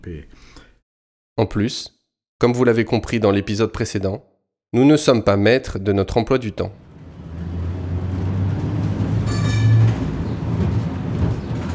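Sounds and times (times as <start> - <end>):
speech: 0.0 - 0.6, 1.4 - 6.8
high-pitched squeal of a tram: 6.8 - 11.7
tram car rumbling while moving in Salt Lake City: 6.8 - 11.7.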